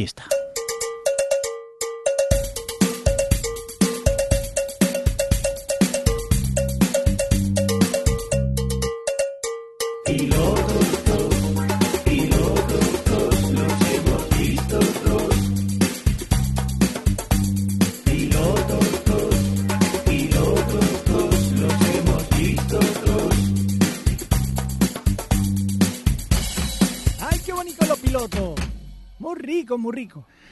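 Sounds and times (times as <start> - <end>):
speech: 0.0 - 0.4, 29.7 - 30.4
upbeat radio-style section jingle music with percussive beat: 0.0 - 16.9, 17.7 - 25.0, 25.8 - 28.6
bright cowbell-like hits: 0.3 - 12.0.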